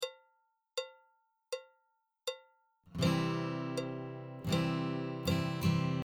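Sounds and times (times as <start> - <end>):
guitar stroke: 3.0 - 6.0.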